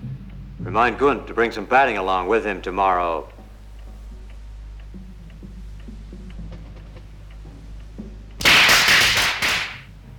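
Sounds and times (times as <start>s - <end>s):
speech: 0.6s - 3.3s
firecrackers popping: 8.4s - 9.9s.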